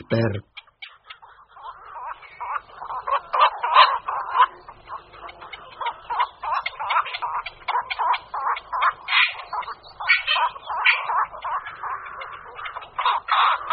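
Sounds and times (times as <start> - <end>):
black-crowned night herons giving harsh croaking calls: 0.0 - 13.7
speech: 0.1 - 0.5.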